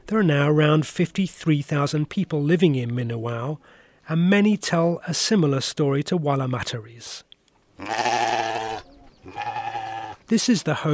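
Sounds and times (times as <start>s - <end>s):
speech: 0.1s - 8.4s, 10.3s - 10.9s
alabaster-coloured sheep bleating while being fed in a small compound: 7.8s - 10.3s.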